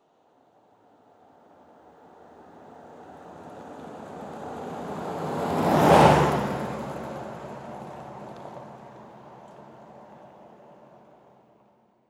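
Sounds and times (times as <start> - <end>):
Jeep Cherokee passing: 3.3 - 8.8.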